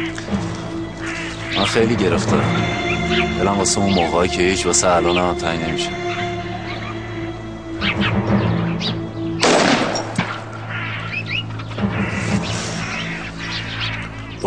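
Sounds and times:
scattered chirping tones: 0.0 - 14.4
steady low hum: 0.0 - 14.4
speech: 1.6 - 6.2
loud burst of gunfire: 9.4 - 10.2
single sharp crack: 9.4 - 10.5.

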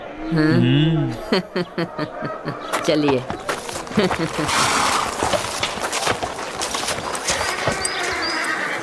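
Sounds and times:
steady noise: 0.0 - 8.8
speech: 0.3 - 4.8
laughter: 0.4 - 3.0, 3.6 - 4.8
horse hooves clip-clopping as a caravan arrives: 2.8 - 8.8.

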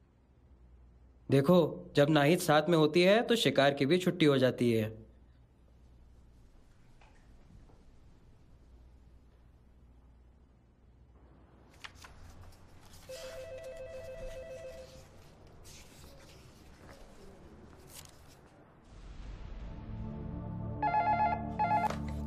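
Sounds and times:
speech: 1.3 - 5.0
telephone ringing with warbling tones: 13.1 - 15.0, 20.8 - 22.2.

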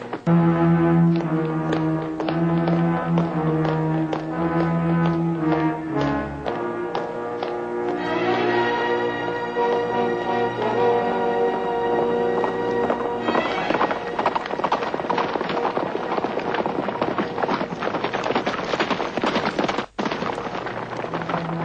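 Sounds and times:
sustained music: 0.0 - 14.4
horse hooves clip-clopping: 0.0 - 21.6.

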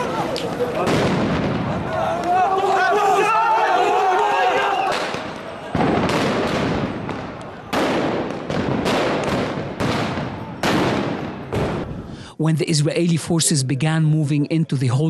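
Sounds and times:
crowd of worshippers shouting: 0.0 - 8.6
stun grenades and tear gas canisters banging: 4.9 - 12.0
speech: 12.4 - 15.0.

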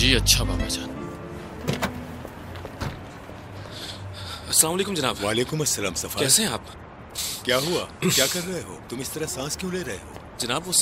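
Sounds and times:
speech: 0.1 - 1.0, 4.5 - 6.8, 7.4 - 10.8
car door clunks and thuds as a passenger climbs out: 1.6 - 2.1, 2.8 - 3.1.

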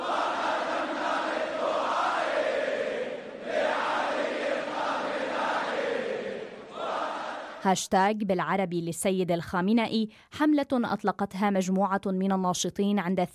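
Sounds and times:
large crowd chanting slogans in unison: 0.0 - 7.7
speech: 7.6 - 13.3.

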